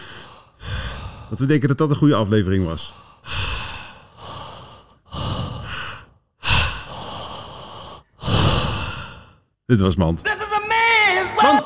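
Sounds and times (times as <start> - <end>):
deep deliberate human breathing: 0.0 - 1.6, 2.8 - 9.6
speech: 1.3 - 3.0, 9.7 - 10.4, 11.4 - 11.6.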